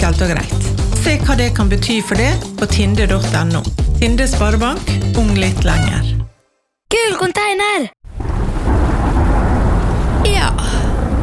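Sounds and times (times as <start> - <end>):
speech: 0.1 - 6.2, 6.9 - 8.0
steady dense rain pouring: 8.1 - 11.2.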